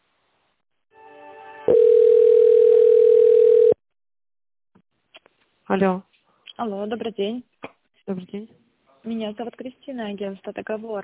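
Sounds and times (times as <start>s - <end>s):
soft buzzing telephone tone while an outgoing call to a business connects: 1.7s - 3.8s
speech: 5.7s - 11.0s.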